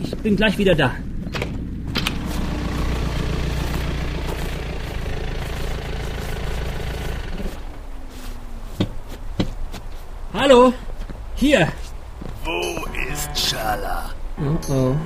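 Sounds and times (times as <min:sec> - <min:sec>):
speech: 0:00.0 - 0:01.1, 0:10.4 - 0:11.8, 0:12.5 - 0:15.0
car engine rumbling and idling: 0:00.9 - 0:08.3.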